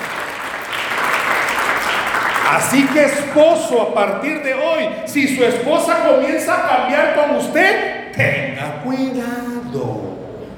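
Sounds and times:
congregation applauding during a church sermon: 0.0 - 3.8
speech: 2.5 - 10.1.

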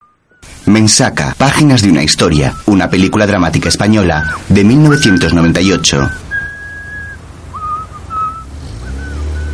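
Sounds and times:
young man whistling while crossing a street in Madrid: 0.0 - 0.5, 4.0 - 9.5
steady low rumble of street noise in Madrid: 0.0 - 9.5
speech: 0.7 - 6.2.

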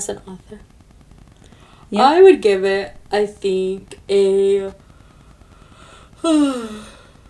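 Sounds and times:
speech: 0.0 - 0.8, 1.9 - 4.8, 6.2 - 7.0
person yawning: 6.2 - 7.2.

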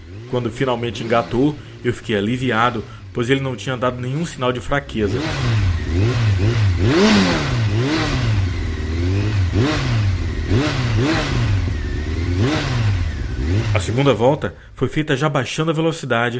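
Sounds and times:
motorcycle engine revving inside a metal globe of death: 0.0 - 14.9
speech: 0.3 - 8.2, 13.7 - 16.3.

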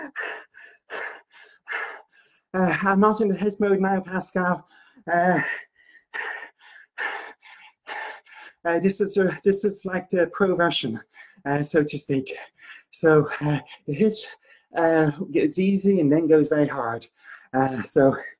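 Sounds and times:
heavy breathing during exercise: 0.0 - 2.5, 4.6 - 8.7, 17.1 - 17.6
speech: 2.5 - 6.2, 8.6 - 18.3.

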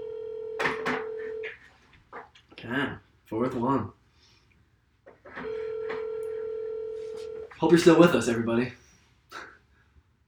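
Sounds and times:
telephone call ringing unanswered: 0.0 - 1.5, 5.4 - 7.5
speech: 2.6 - 4.0, 7.6 - 9.5.

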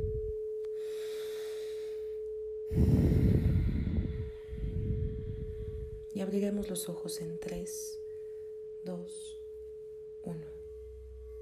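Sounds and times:
steady low humming tone: 0.0 - 11.4
slow deep breath in and out: 0.7 - 6.0
speech: 2.7 - 3.0, 6.3 - 8.0, 8.8 - 9.4, 10.2 - 10.6.

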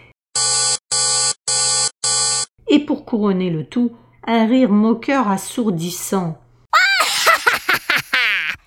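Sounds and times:
alarm buzzing in harsh bursts: 0.4 - 2.5
speech: 2.8 - 6.4
laughter: 7.0 - 8.6.

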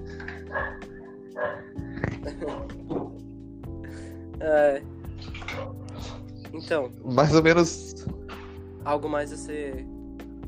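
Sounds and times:
several dogs barking: 0.3 - 3.1, 5.2 - 6.3
laughter: 1.9 - 3.0
speech: 4.4 - 4.9, 6.6 - 8.2, 8.8 - 9.9.

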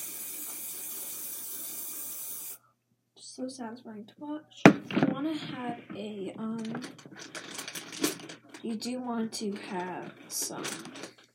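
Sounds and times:
hairspray sprayed from an aerosol can: 0.0 - 2.6
speech: 3.4 - 7.4, 8.6 - 11.0.

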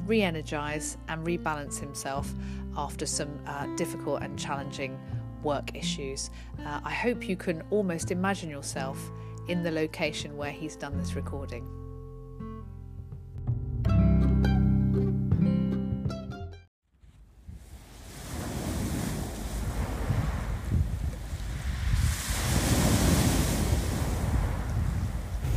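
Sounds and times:
music: 0.0 - 16.7
speech: 0.1 - 11.8
wind noise on the microphone: 17.0 - 25.5
ocean waves rolling and breaking on a shore: 17.4 - 25.5.

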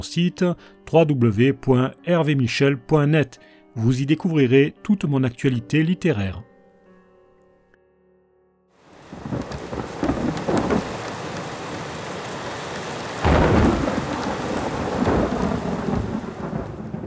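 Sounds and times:
speech: 0.0 - 6.5
steady heavy rain pouring down: 8.8 - 17.0
thunder rumbling and cracking: 8.9 - 17.0.

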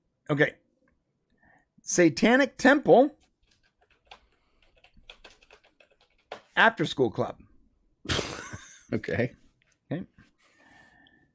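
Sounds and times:
speech: 0.3 - 0.6, 1.8 - 3.2, 6.6 - 7.4, 8.9 - 10.1
typing on a computer keyboard: 3.4 - 6.5.

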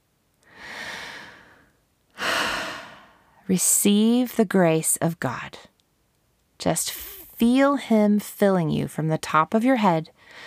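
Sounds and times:
deep breaths: 0.4 - 3.4, 10.2 - 10.4
speech: 3.5 - 5.7, 6.6 - 10.4.

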